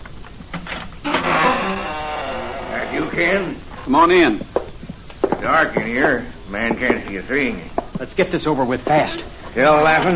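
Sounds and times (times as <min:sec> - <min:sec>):
creaking door hinge squeal: 0:01.0 - 0:02.8
speech: 0:03.2 - 0:04.5, 0:05.4 - 0:10.1.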